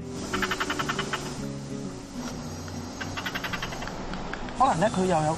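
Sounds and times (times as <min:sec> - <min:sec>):
squirrel in the trees giving croaking alarm calls: 0:00.1 - 0:04.1
speech: 0:04.6 - 0:05.3.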